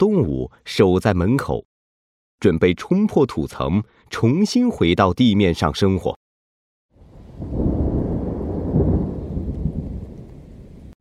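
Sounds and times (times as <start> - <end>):
speech: 0.0 - 1.7, 2.4 - 6.2
spring thunder rumbling: 7.0 - 10.9.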